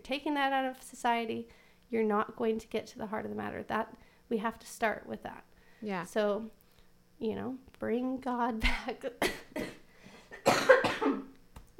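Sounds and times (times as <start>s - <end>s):
speech: 0.1s - 6.6s, 7.2s - 9.7s
raspy coughs: 8.7s - 11.3s.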